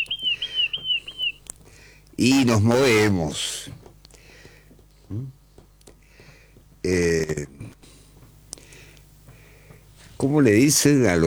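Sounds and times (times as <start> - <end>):
small bird chirping in a high warbling trill: 0.0 - 1.6
speech: 2.2 - 3.8, 10.3 - 11.2.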